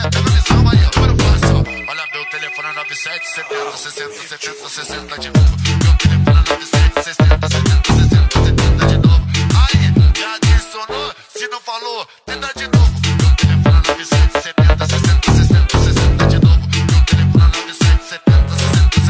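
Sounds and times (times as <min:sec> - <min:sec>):
loud punchy rhythmic sound: 0:00.0 - 0:10.8, 0:12.6 - 0:19.0
phone ringtone chiming: 0:01.5 - 0:05.0.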